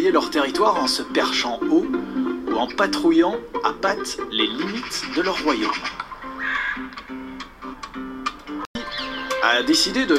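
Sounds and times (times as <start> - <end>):
speech: 0.0 - 6.0, 9.5 - 10.1
magpies chattering: 2.5 - 3.1, 3.8 - 7.4, 8.8 - 9.4.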